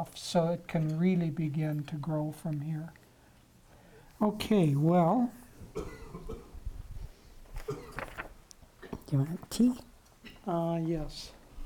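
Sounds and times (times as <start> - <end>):
speech: 0.0 - 3.0, 4.2 - 6.4, 9.1 - 11.4
person coughing harshly: 5.7 - 6.6, 7.6 - 8.1.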